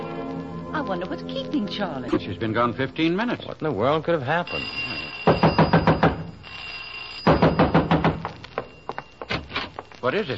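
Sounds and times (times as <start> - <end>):
speech: 0.9 - 5.5, 10.0 - 10.3
rapid heavy pounding on a garage door: 5.3 - 6.3, 7.3 - 8.3.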